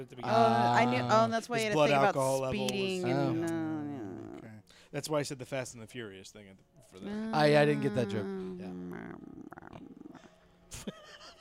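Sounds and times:
speech: 0.0 - 3.9, 4.9 - 11.3
person imitating a cat meow and purr: 3.0 - 4.5, 7.0 - 10.2.

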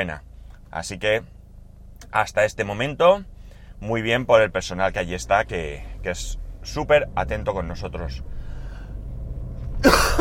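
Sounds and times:
speech: 0.0 - 1.4, 2.1 - 8.3
low hum: 0.2 - 10.1
person letting out a loud raspy cough: 9.8 - 10.1.

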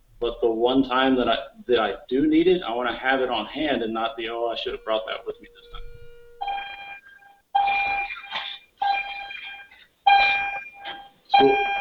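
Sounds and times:
speech: 0.2 - 5.9
school bell ringing with buzzy metallic clangs: 2.7 - 11.7.

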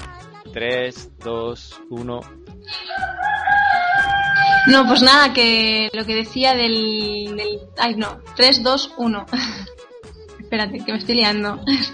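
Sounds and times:
speech: 0.4 - 3.2, 4.7 - 9.7, 10.5 - 11.9
laughter: 2.7 - 5.2, 11.6 - 11.9
rooster crowing loudly: 2.7 - 5.3.

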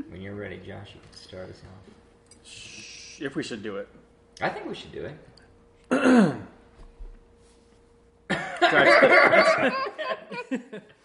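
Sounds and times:
speech: 0.2 - 5.3, 5.9 - 6.5, 8.7 - 11.0
person coughing after drinking eggnog: 5.9 - 6.6
throat clearing after drinking eggnog: 5.9 - 6.6
laughter: 8.3 - 11.0.

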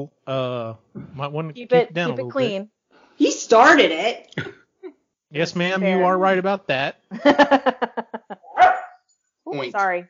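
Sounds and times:
speech: 0.0 - 4.6, 5.3 - 7.8, 9.5 - 10.0
laughter: 0.3 - 2.5, 5.4 - 8.6, 9.6 - 9.8
dog barking: 8.5 - 9.0.

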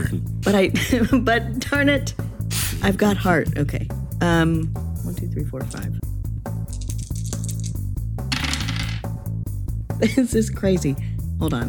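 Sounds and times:
speech: 0.0 - 2.2, 2.8 - 6.1, 10.0 - 11.6
dice rattling as they are rolled by hand: 6.7 - 9.1.

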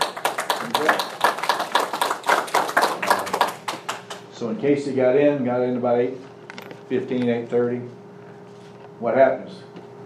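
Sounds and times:
audience applauding: 0.0 - 4.3
speech: 0.6 - 1.2, 4.4 - 6.3, 6.9 - 8.0, 9.0 - 9.7.

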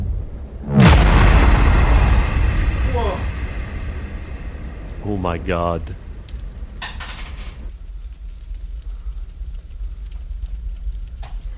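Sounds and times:
synthesized gun sound effect booming shots: 0.6 - 6.8
speech: 5.2 - 6.0.

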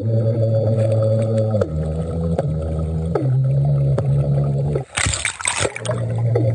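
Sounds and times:
underwater beatboxing at a beach in Thailand: 0.0 - 6.5
water splashing: 4.8 - 6.5.

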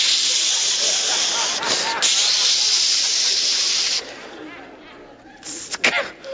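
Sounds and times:
voice imitating the hiss of an aerosol bug spray can: 0.0 - 4.1, 5.4 - 5.9
laughter: 0.2 - 6.3.

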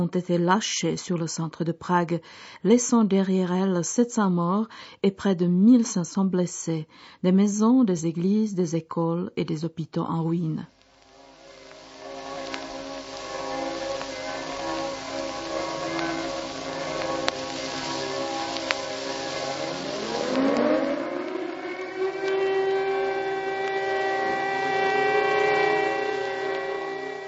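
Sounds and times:
speech: 0.0 - 10.8
air-raid siren wailing in Prague in 1945: 11.0 - 27.2.

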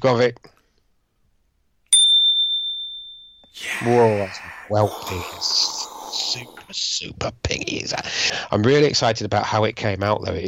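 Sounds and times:
speech: 0.0 - 0.5, 3.6 - 10.4
bright resonant ping: 1.9 - 3.5.

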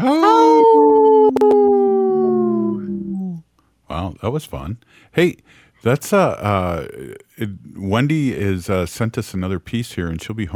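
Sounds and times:
speech: 0.0 - 0.3, 3.9 - 10.5
wolf howling: 0.0 - 3.4.

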